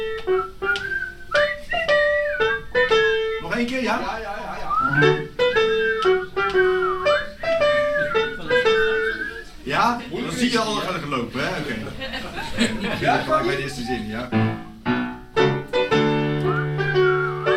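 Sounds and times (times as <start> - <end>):
group whistling along to a simple melody: 0.0 - 3.4, 4.6 - 9.6, 16.0 - 17.5
speech: 0.3 - 0.6, 3.6 - 5.2, 9.8 - 14.5
laughter: 7.9 - 14.1.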